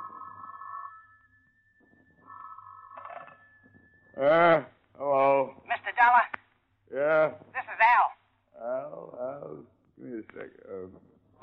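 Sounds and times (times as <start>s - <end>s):
telephone ringing: 0.0s - 4.6s
faint hum: 2.4s - 11.4s
speech: 4.2s - 4.7s.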